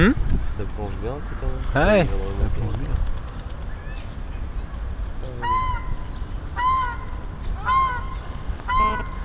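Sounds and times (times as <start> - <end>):
speech: 0.0 - 0.2, 0.8 - 2.6
low outdoor rumble: 0.0 - 9.2
small brown duck quacking: 6.6 - 9.2.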